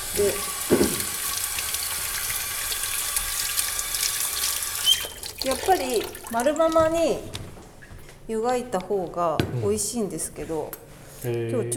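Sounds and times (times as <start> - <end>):
tap water running over new potatoes in a sink: 0.0 - 7.4
speech: 0.2 - 1.0, 5.4 - 7.4, 8.3 - 11.7.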